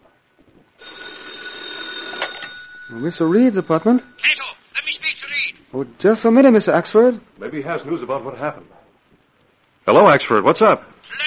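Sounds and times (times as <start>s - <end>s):
telephone bell ringing: 0.8s - 4.5s
speech: 2.9s - 4.3s, 5.7s - 8.8s, 9.9s - 11.2s.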